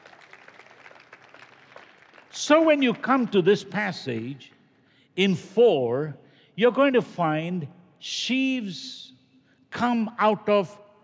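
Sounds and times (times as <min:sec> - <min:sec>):
audience clapping as a clap offering: 0:00.0 - 0:04.2
speech: 0:02.3 - 0:04.6, 0:05.2 - 0:09.1, 0:09.7 - 0:10.8.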